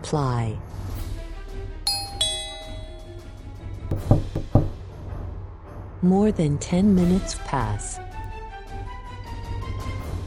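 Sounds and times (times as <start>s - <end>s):
speech: 0.0s - 0.8s, 6.0s - 8.1s
two-tone ding-dong doorbell chime: 1.9s - 3.4s
firm knocks on a door: 3.9s - 4.9s.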